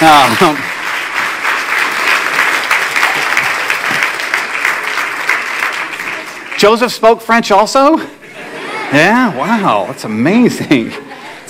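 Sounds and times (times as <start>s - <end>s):
audience applause: 0.0s - 7.0s
speech: 6.6s - 8.2s, 8.9s - 11.4s
laughter: 8.0s - 11.4s.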